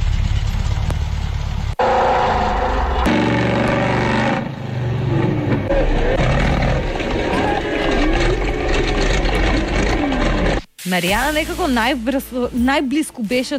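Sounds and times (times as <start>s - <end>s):
monster truck engine roaring and revving: 0.0s - 10.7s
speech: 10.9s - 13.5s.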